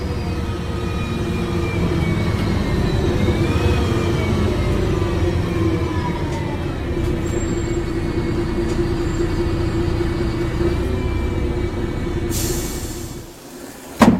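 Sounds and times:
bus engine rumble with gear whine: 0.0 - 14.1
bus air-brake hiss: 12.3 - 13.4.

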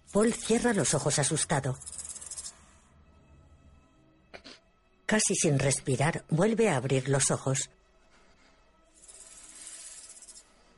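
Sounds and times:
snake hissing: 0.0 - 2.8, 8.9 - 10.7
speech: 0.1 - 2.1, 5.1 - 7.8.

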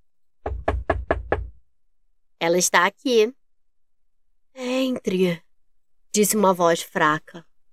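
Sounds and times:
firm knocking on a wooden door: 0.4 - 1.6
speech: 2.4 - 3.4, 4.6 - 5.4, 6.1 - 7.5.

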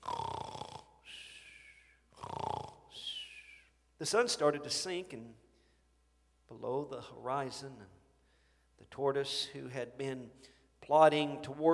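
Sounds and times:
cartoonish snoring with whistling exhale: 0.0 - 1.1, 2.1 - 3.0
speech: 4.0 - 5.4, 6.5 - 8.0, 8.8 - 11.7.

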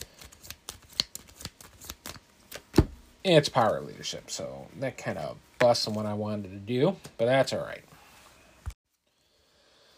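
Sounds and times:
playing cards being handled during a card game: 0.0 - 3.0
speech: 3.2 - 8.0.

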